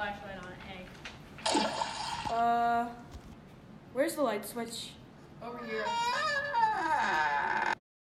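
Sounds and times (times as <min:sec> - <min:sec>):
speech: 0:00.0 - 0:01.7, 0:02.3 - 0:03.0, 0:03.9 - 0:07.7
slowly swinging door creaking: 0:05.6 - 0:07.8.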